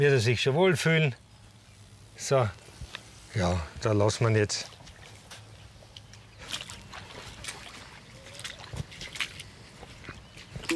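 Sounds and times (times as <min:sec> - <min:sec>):
speech: 0:00.0 - 0:01.2, 0:02.2 - 0:02.6, 0:03.3 - 0:04.7
water sloshing and splashing as a frog is released into water: 0:04.5 - 0:10.7.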